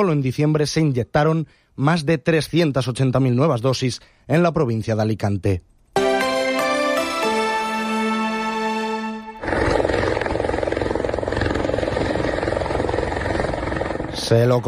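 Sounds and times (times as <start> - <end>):
speech: 0.0 - 5.7, 14.3 - 14.6
sustained musical tones: 6.0 - 9.5
rescue helicopter rotor thumping under engine roar: 9.8 - 14.3.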